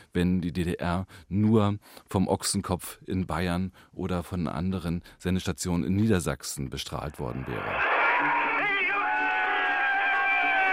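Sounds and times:
speech: 0:00.1 - 0:08.5
large crowd cheering with shouts and whoops: 0:07.3 - 0:10.7
person yelling: 0:07.7 - 0:10.7.

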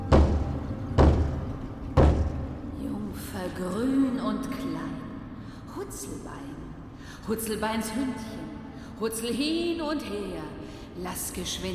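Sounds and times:
slow heavy knocks on a heavy wooden door deep underground at the end of a dark tunnel: 0:00.0 - 0:02.6
speech: 0:03.4 - 0:05.0, 0:05.8 - 0:11.7.

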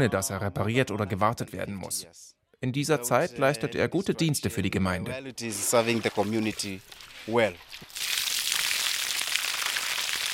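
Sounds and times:
speech: 0:00.0 - 0:08.1
water poured into plastic jerrycan: 0:05.5 - 0:10.3.

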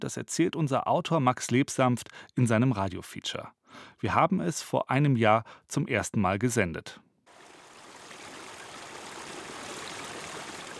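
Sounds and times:
speech: 0:00.0 - 0:07.1
mountain stream rushing: 0:07.3 - 0:10.7.

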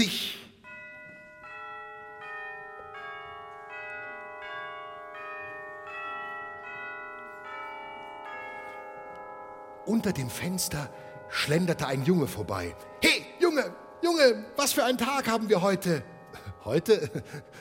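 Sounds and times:
bells ringing in a rapid peal: 0:00.0 - 0:17.5
speech: 0:09.8 - 0:17.5.

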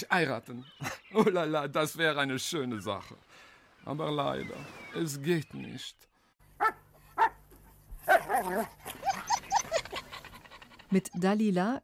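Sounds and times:
speech: 0:00.0 - 0:07.3, 0:08.3 - 0:09.3, 0:10.9 - 0:11.8
female dog barking: 0:06.6 - 0:07.4, 0:08.0 - 0:09.2
female dog yelping with whiny barks: 0:06.6 - 0:07.4, 0:08.0 - 0:10.6.

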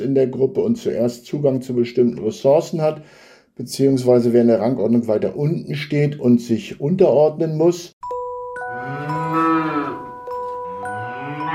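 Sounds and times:
speech: 0:00.0 - 0:08.0
cow mooing: 0:08.7 - 0:11.5.

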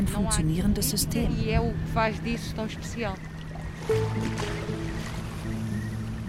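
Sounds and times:
small motorboat engine droning on Ria Formosa marshland wetlands in Portugal's Algarve: 0:00.0 - 0:06.2
speech: 0:00.1 - 0:05.6.

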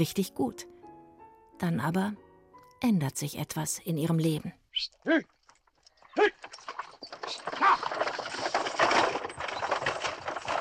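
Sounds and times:
speech: 0:00.0 - 0:00.7, 0:01.6 - 0:02.2, 0:02.8 - 0:05.4
horse-drawn carriage driving away, hooves clip-clopping: 0:05.3 - 0:10.6.

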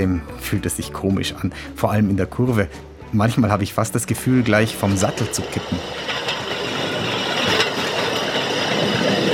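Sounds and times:
speech: 0:00.0 - 0:06.3
continuous rolling rumble of rail draisines: 0:02.2 - 0:09.3
rail draisine wheels squealing on track: 0:04.2 - 0:09.3.

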